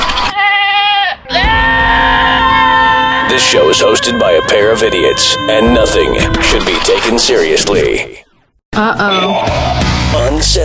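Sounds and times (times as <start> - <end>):
goat bleating: 0.3 - 3.0
speech: 3.5 - 8.2, 8.8 - 10.6.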